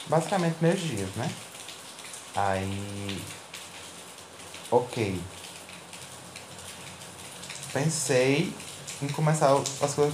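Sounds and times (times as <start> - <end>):
steady rain falling: 0.0 - 10.1
speech: 0.1 - 1.5, 2.4 - 3.4, 4.7 - 5.4, 7.7 - 10.1.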